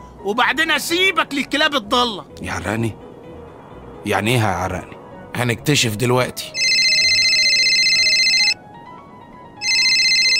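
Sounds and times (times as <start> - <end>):
speech: 0.2 - 3.0, 4.0 - 6.6
phone ringtone with bright electronic ring: 6.5 - 8.6, 9.6 - 10.3.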